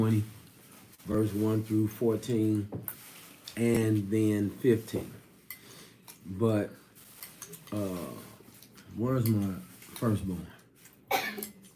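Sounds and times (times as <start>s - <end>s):
speech: 0.0s - 0.4s, 1.0s - 5.2s, 6.2s - 6.8s, 7.5s - 8.3s, 8.9s - 10.6s
single moderately loud sneeze: 11.1s - 11.4s.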